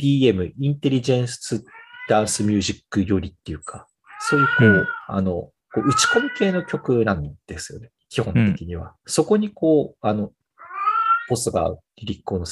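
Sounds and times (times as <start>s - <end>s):
speech: 0.0s - 10.4s, 11.3s - 12.5s
cat meowing loudly: 1.7s - 2.5s, 4.1s - 6.9s, 10.6s - 11.3s.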